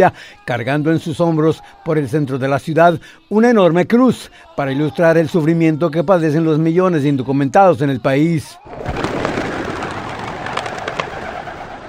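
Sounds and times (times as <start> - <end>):
speech: 0.0 - 9.0
flock of released doves wings flapping: 8.7 - 11.8.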